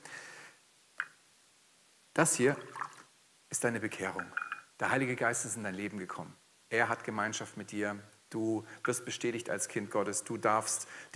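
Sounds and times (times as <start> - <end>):
speech: 2.2 - 2.9, 3.5 - 11.1
water pouring into a glass held over a bowl: 2.5 - 3.1.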